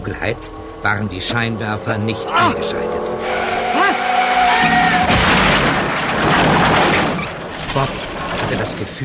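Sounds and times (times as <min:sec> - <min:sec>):
speech: 0:00.1 - 0:03.6, 0:07.8 - 0:09.0
warbling screech: 0:00.1 - 0:06.1
car crashing with a loud metal crash: 0:02.7 - 0:09.0
glass shattering: 0:05.0 - 0:08.8
debris tinkling and rattling: 0:05.0 - 0:09.0.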